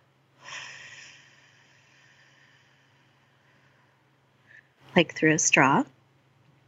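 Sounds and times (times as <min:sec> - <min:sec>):
long soft exhale through the mouth: 0:00.4 - 0:04.7
sharp inhale through the nose: 0:00.4 - 0:04.7
speech: 0:05.0 - 0:06.0.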